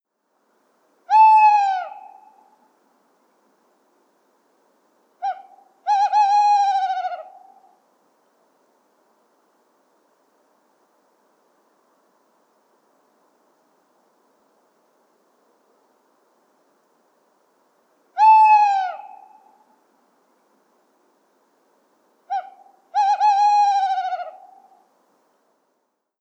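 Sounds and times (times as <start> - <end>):
Strix aluco tawny owl singing: 1.1 - 2.6, 5.2 - 7.8, 18.2 - 19.7, 22.3 - 24.9.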